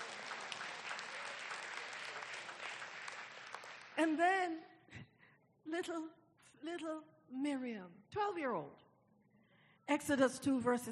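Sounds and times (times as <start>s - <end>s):
audience clapping in praise to God: 0.0s - 4.2s
speech: 4.0s - 5.1s, 5.7s - 8.8s, 9.9s - 10.9s.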